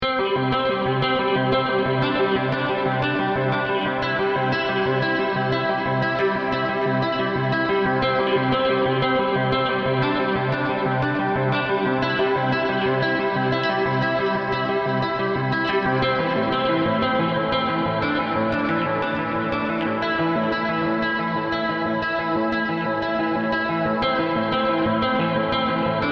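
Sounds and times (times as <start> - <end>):
guitar multiphonics: 0.0 - 26.0.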